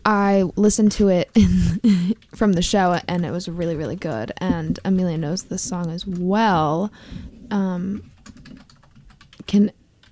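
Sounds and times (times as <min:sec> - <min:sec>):
speech: 0:00.0 - 0:08.6, 0:09.5 - 0:09.8
fingers typing on a computer keyboard: 0:02.1 - 0:06.3, 0:08.0 - 0:10.1.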